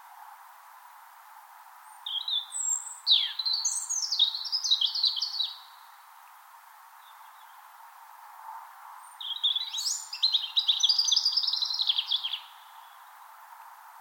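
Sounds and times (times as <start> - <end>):
European robin singing spring morning song in Finland: 1.8 - 6.1, 7.0 - 7.7, 9.0 - 13.2.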